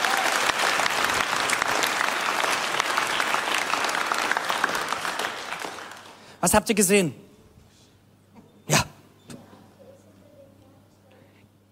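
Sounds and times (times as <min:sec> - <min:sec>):
room full of people clapping steadily: 0:00.0 - 0:06.4
speech: 0:06.4 - 0:07.2.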